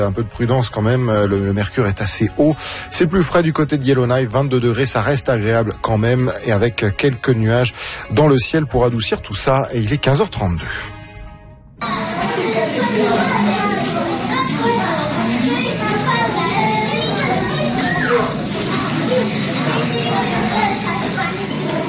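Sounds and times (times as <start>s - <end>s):
speech: 0.0s - 11.0s
crowd of children playing and chattering with shouts: 11.8s - 21.8s.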